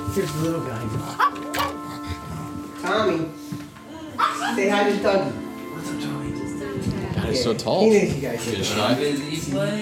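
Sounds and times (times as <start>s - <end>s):
speech: 0.2s - 1.4s, 2.9s - 3.5s, 4.5s - 6.1s, 7.3s - 9.8s
dog barking while running around a two-story suburban house: 1.2s - 1.8s, 4.2s - 4.6s.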